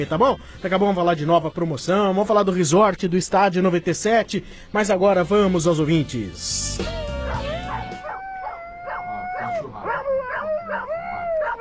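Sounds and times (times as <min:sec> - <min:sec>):
speech: 0:00.0 - 0:07.4
several dogs howling together: 0:06.8 - 0:11.5.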